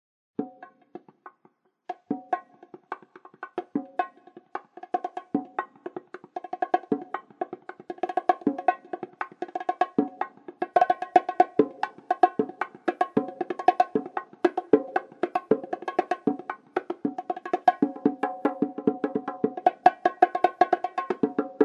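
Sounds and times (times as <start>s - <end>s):
bongo solo: 0.4s - 21.6s.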